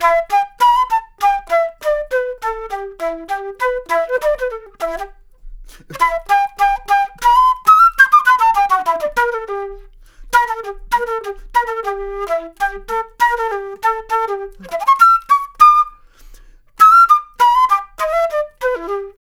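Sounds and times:
jazz flute solo loop: 0:00.0 - 0:19.2.

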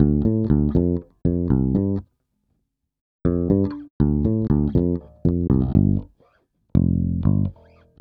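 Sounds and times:
Fender electric bass loop in D minor: 0:00.0 - 0:02.0, 0:03.3 - 0:06.1, 0:06.7 - 0:07.9.

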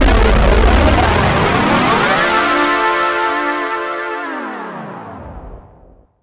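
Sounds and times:
rising pad for afterhours EDM: 0:00.0 - 0:06.0.

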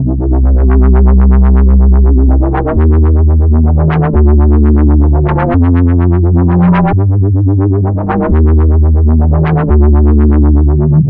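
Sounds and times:
vibes bass: 0:00.0 - 0:11.0.

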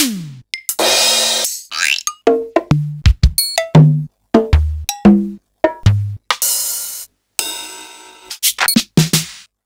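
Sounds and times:
Elka Drumstar 80 drum machine sliced hits: 0:00.0 - 0:01.6, 0:02.3 - 0:07.0, 0:08.5 - 0:09.5.

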